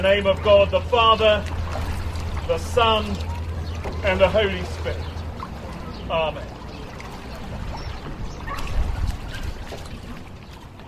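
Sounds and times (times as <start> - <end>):
speech: 0.0 - 1.6, 2.5 - 3.3, 4.0 - 5.1, 6.1 - 6.5
water lapping against boats at a jetty at high tide in Brightlingsea: 0.0 - 10.8.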